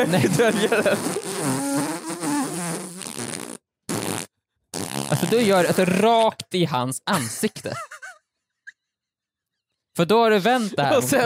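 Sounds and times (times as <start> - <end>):
laughter: 0.0 - 1.2, 7.1 - 8.2, 10.6 - 11.2
speech: 0.0 - 1.9, 5.3 - 7.9, 10.0 - 11.2
loud fart: 0.0 - 6.2.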